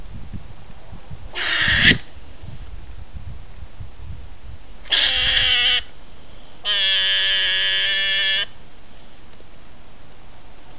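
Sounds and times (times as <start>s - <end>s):
European hedgehog screaming: 1.4s - 2.0s, 4.9s - 5.9s, 6.6s - 8.5s.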